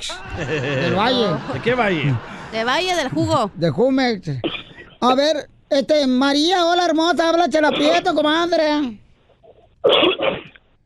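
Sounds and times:
speech: 0.0s - 9.0s, 9.8s - 10.4s
laughter: 0.1s - 4.1s
loud sneeze: 9.8s - 10.6s.

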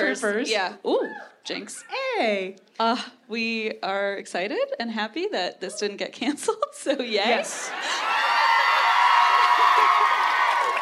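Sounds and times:
speech: 0.0s - 8.2s
live audience at a show cheering loudly: 7.7s - 10.8s.

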